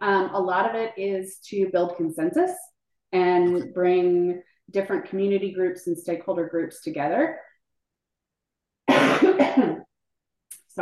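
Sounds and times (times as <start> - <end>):
speech: 0.4 - 7.5
raspy coughs: 8.9 - 9.9.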